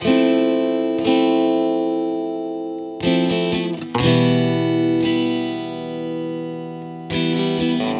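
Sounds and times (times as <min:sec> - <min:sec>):
acoustic guitar in A minor: 0:00.0 - 0:07.9.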